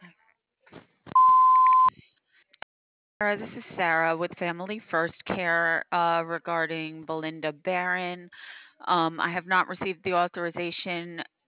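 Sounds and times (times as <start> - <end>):
voicemail tone electronic beep: 1.2 - 1.9
speech: 3.2 - 11.3.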